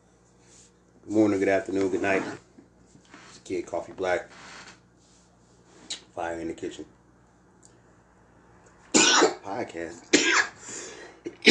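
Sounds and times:
speech: 1.0 - 2.5, 3.5 - 4.5, 6.2 - 7.0, 9.5 - 10.4
harsh coughs: 9.0 - 9.4, 10.2 - 10.6, 11.3 - 11.4.

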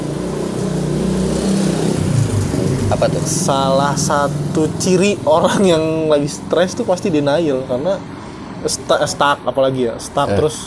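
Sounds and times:
motorcycle engine revving: 0.0 - 8.2
speech: 3.0 - 10.6.

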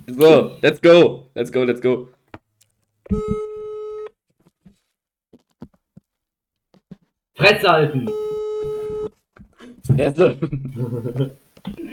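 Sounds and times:
speech: 0.1 - 2.2, 3.1 - 3.4, 7.4 - 8.3, 9.9 - 11.9
telephone ringing tone of an outgoing call: 3.1 - 4.1.

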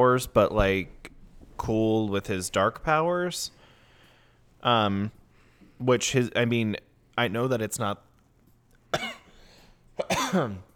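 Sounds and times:
speech: 0.0 - 1.0, 1.6 - 3.6, 4.6 - 5.2, 5.8 - 8.1, 8.9 - 9.1, 10.3 - 10.7
person with a dry throat clearing throat: 9.0 - 9.3, 10.0 - 10.7
person with a dry throat coughing: 9.0 - 9.4, 10.0 - 10.7.

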